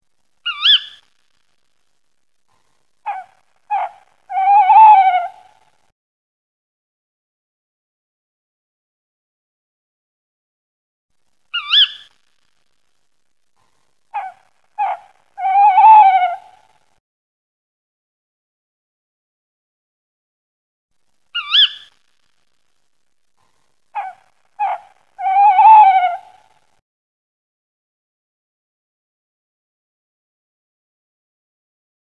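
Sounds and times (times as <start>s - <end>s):
tawny owl call from a bird voice game: 0.5s - 1.0s, 3.1s - 5.6s, 11.6s - 12.1s, 14.2s - 16.7s, 21.4s - 21.9s, 24.0s - 26.6s.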